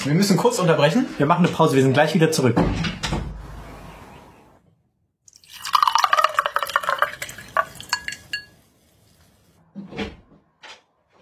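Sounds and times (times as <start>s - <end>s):
speech: 0.0s - 3.2s
drink pouring into a glass: 5.3s - 8.6s.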